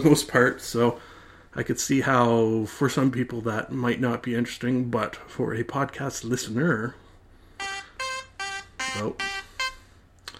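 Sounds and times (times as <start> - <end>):
speech: 0.0 - 7.0, 8.9 - 9.3
timer going off with buzzy electronic beeps: 7.6 - 9.9.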